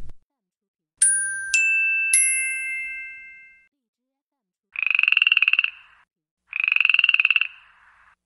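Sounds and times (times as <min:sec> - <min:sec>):
bright chiming tones: 0:01.0 - 0:03.7
rapid raspy frog croaking: 0:04.8 - 0:08.2.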